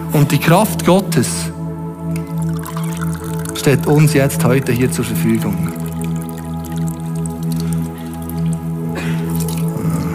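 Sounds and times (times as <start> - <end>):
speech: 0.2 - 1.6, 3.6 - 5.8
water dripping: 2.0 - 10.0.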